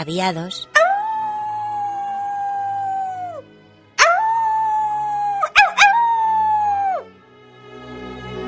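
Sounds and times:
speech: 0.0 - 0.8
hungry wolf howling in snow-covered fields of Umbria: 0.8 - 3.4, 4.0 - 7.1.

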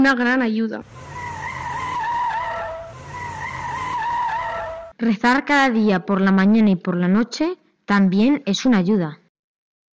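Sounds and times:
speech: 0.0 - 1.1, 5.0 - 9.2
low car engine rumble: 0.8 - 4.9
car tires squealing as a car skids: 0.8 - 5.0.

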